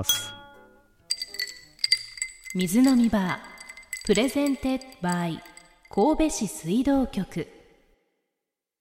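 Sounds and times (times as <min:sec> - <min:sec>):
speech: 0:00.0 - 0:00.3, 0:02.5 - 0:07.6
glass tapping against glass: 0:00.0 - 0:06.0
glasses clinking in a toast: 0:00.0 - 0:06.0.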